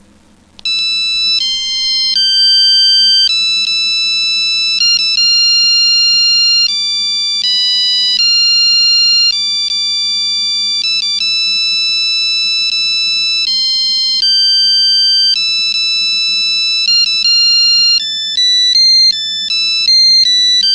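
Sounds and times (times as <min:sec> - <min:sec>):
piano melody: 0:00.6 - 0:20.7.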